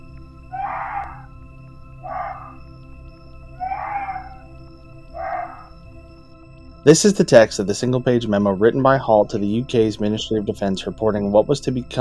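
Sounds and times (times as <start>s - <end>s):
muntjac deer giving loud shrill alarm barks: 0.5s - 1.3s, 2.0s - 2.6s, 3.6s - 5.7s
speech: 6.8s - 11.9s.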